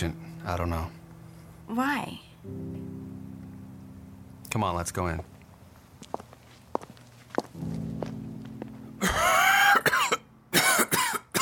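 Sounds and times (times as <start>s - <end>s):
speech: 0.0s - 1.0s, 1.7s - 3.1s, 4.5s - 5.3s
footsteps tapping softly: 5.2s - 9.3s
person coughing in harsh rasping fits: 9.0s - 11.4s.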